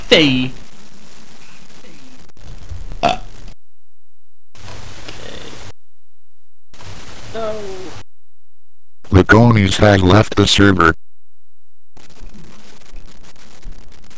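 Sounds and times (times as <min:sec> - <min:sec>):
sharp crackle of static: 0:00.0 - 0:03.6, 0:04.5 - 0:05.8, 0:06.7 - 0:08.1, 0:09.0 - 0:11.0, 0:11.9 - 0:14.1
speech: 0:00.1 - 0:00.6, 0:09.4 - 0:11.0
deep guttural emu grunts and rumbling calls: 0:03.0 - 0:03.4.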